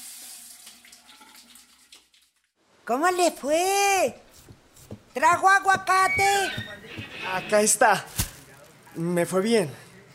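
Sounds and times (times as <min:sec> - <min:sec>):
water running from a kitchen sink tap: 0:00.0 - 0:02.4
speech: 0:02.9 - 0:04.3, 0:05.2 - 0:08.2, 0:09.0 - 0:09.8.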